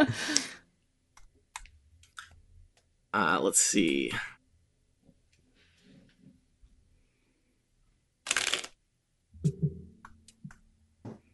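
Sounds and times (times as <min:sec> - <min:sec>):
speech: 0:00.0 - 0:00.4, 0:03.2 - 0:04.3
playing cards being riffle shuffled: 0:08.3 - 0:08.8.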